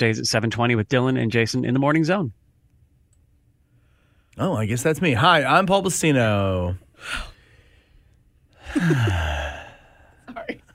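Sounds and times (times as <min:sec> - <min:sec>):
speech: 0:00.0 - 0:02.4, 0:04.4 - 0:07.3, 0:08.7 - 0:09.6
heavy breathing: 0:06.9 - 0:10.3.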